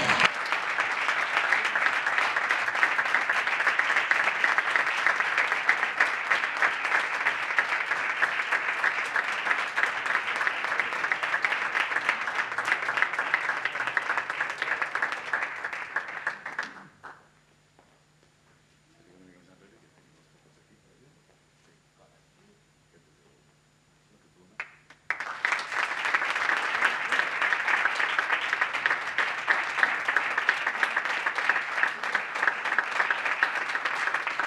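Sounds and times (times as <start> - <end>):
crowd applauding at a prize presentation: 0.0 - 17.2, 24.6 - 34.4.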